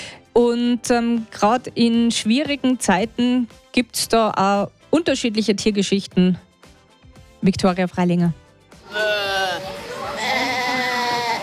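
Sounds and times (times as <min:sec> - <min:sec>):
speech: 0:00.4 - 0:06.5, 0:07.4 - 0:09.2
mother goat bleating loudly for her kids: 0:08.9 - 0:11.4.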